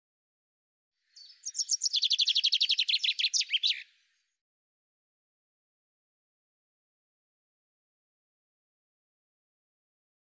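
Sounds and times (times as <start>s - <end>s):
Common chaffinch song with quick repeated notes: 1.1s - 4.4s.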